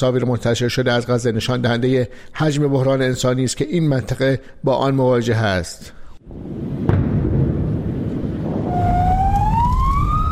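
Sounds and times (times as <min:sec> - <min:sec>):
speech: 0:00.0 - 0:07.0
heavy rumbling wind-like noise: 0:06.3 - 0:10.3
ambulance siren wailing in Gaza during bombardment: 0:08.7 - 0:10.3.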